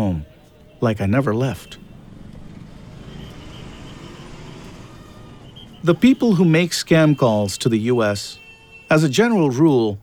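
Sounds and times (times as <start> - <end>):
speech: 0.0 - 1.8, 5.8 - 10.0
busy street traffic outside an airport in Mumbai India: 0.0 - 10.0
faint horn-like tones: 2.9 - 9.2.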